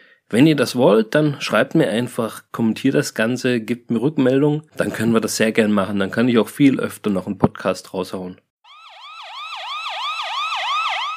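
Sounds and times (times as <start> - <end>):
speech: 0.3 - 8.4
police siren yelping: 8.6 - 11.1.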